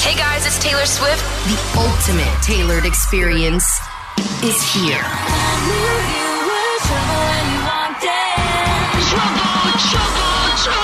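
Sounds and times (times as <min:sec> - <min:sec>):
speech: 0:00.7 - 0:06.2
huge concert crowd screaming and cheering: 0:02.4 - 0:10.8.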